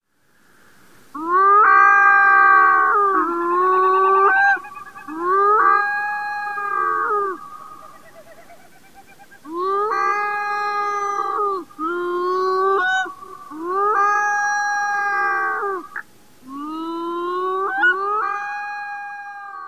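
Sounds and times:
wails: 1.2s - 19.6s.

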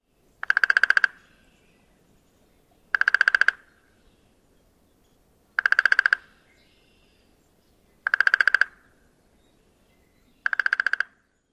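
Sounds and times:
Downy Woodpecker drumming: 0.4s - 1.2s, 2.9s - 3.8s, 5.5s - 6.4s, 8.0s - 9.0s, 10.4s - 11.3s.

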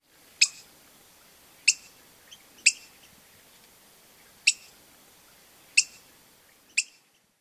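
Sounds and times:
chink calls: 0.4s - 0.7s, 1.6s - 3.0s, 4.4s - 4.7s, 5.7s - 6.1s, 6.7s - 7.2s.

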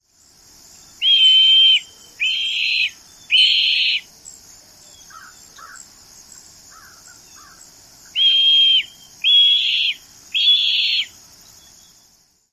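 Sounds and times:
juvenile Red-tailed Hawk squeals: 1.0s - 4.1s, 6.9s - 11.1s.

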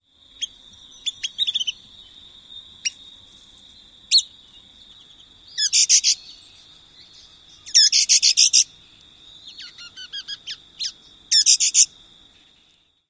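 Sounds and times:
brown-headed nuthatch calls: 0.4s - 1.8s, 5.0s - 8.7s, 9.4s - 11.9s.

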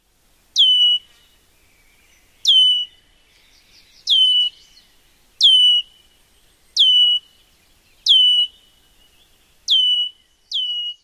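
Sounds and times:
male Red-winged Blackbird alarm whistles: 0.6s - 1.0s, 4.1s - 4.6s, 6.8s - 7.2s, 8.1s - 8.5s, 9.7s - 11.0s.

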